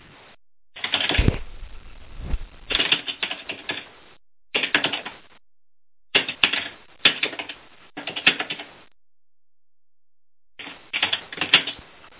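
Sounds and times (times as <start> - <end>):
rapid keyboard typing: 0.8 - 1.2, 2.7 - 3.9, 4.5 - 5.2, 6.1 - 8.8, 10.6 - 11.8.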